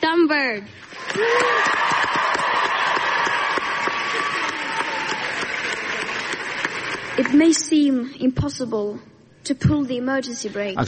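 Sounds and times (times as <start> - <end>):
speech: 0.0 - 2.4, 7.2 - 10.8
crowd of students clapping in an ovation: 0.8 - 8.0
students' cheers and whoops: 1.0 - 7.0.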